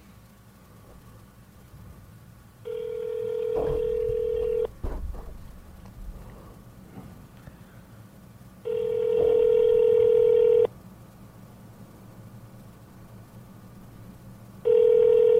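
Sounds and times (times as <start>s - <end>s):
electronic ringback tone through a speakerphone: 2.7s - 4.7s, 8.7s - 10.7s, 14.6s - 15.3s.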